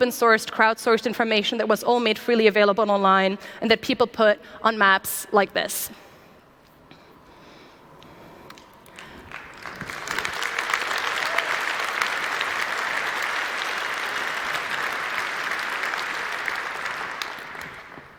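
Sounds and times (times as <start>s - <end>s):
speech: 0.0s - 6.1s
crowd applauding: 8.5s - 18.1s.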